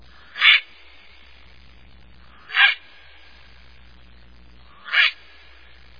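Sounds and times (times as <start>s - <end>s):
heron giving harsh hoarse squawks: 0.1s - 0.7s, 2.3s - 2.9s, 4.7s - 5.2s.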